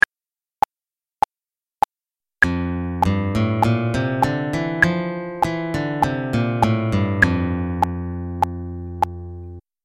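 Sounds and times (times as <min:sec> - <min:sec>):
F major scale: 0:02.5 - 0:09.6.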